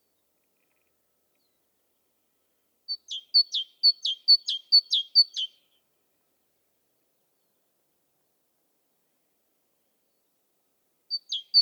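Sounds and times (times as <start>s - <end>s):
great tit singing see-saw phrases: 2.9s - 5.6s, 11.1s - 11.5s.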